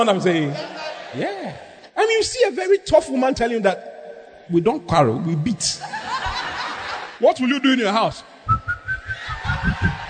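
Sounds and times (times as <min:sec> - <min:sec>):
speech: 0:00.0 - 0:03.9, 0:04.5 - 0:06.0, 0:07.2 - 0:08.6
laughter: 0:00.5 - 0:01.2, 0:05.8 - 0:07.2, 0:08.9 - 0:10.0
person whistling short high notes: 0:08.5 - 0:09.2.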